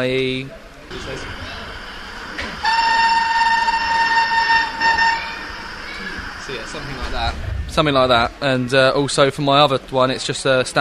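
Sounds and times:
speech: 0.0s - 1.6s, 6.5s - 10.7s
model locomotive sound chip train horn blast: 2.5s - 6.8s.

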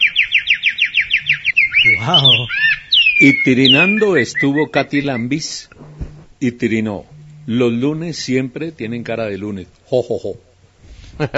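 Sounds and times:
bird singing a fast bright trill: 0.0s - 5.7s
speech: 1.8s - 5.8s, 6.4s - 10.5s, 11.2s - 11.3s
laughter: 11.2s - 11.3s.

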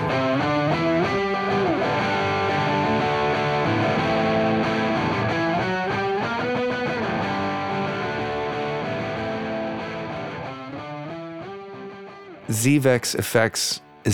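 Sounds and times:
heavily distorted electric guitar strumming chunky chords: 0.0s - 10.4s
speech: 12.5s - 14.1s.

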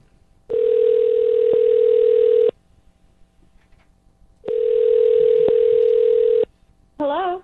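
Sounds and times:
person answering phone: 0.5s - 2.5s, 4.5s - 6.5s
telephone buzzing ring on an outgoing call: 0.5s - 2.5s, 4.5s - 6.5s.

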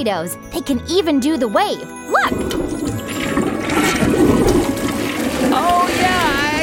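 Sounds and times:
speech: 0.0s - 2.6s
toilets flushing: 2.3s - 6.6s.

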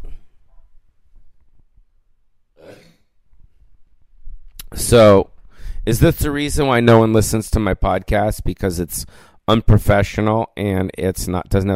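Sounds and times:
burp: 2.6s - 3.1s
speech: 4.8s - 11.7s
breathing: 5.4s - 5.9s, 9.0s - 9.5s.

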